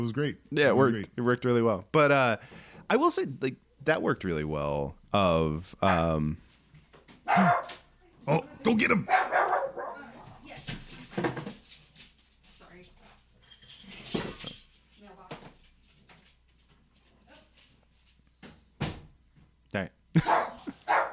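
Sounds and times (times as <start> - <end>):
speech: 0.0 - 6.4, 7.3 - 9.6, 19.7 - 20.5
dog barking: 5.8 - 6.2, 7.2 - 7.9, 9.0 - 10.1, 20.2 - 21.1.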